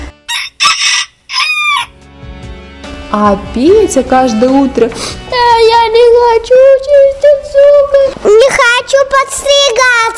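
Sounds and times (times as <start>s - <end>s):
rooster crowing: 0.3s - 2.0s
speech: 3.1s - 10.1s.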